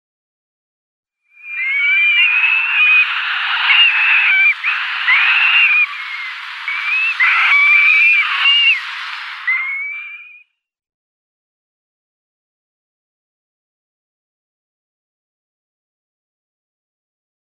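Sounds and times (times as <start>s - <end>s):
Eurasian curlew downy young calling: 1.5s - 10.4s.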